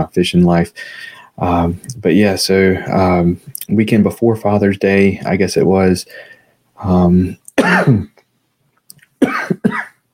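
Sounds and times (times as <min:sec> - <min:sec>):
speech: 0:00.0 - 0:08.1
person coughing: 0:07.6 - 0:08.1, 0:09.2 - 0:10.0
throat clearing: 0:07.6 - 0:08.1.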